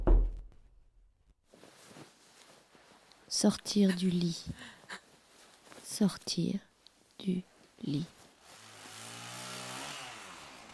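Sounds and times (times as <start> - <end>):
speech: 3.3 - 4.8, 6.0 - 8.2
chainsaw cutting wood: 8.4 - 10.7.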